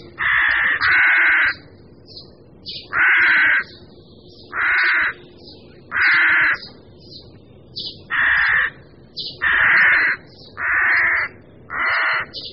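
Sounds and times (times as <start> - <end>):
faint bird calls: 0.0 - 12.5
rooks cawing: 0.1 - 1.8, 2.9 - 3.8, 4.5 - 5.3, 5.9 - 6.7, 8.1 - 12.4.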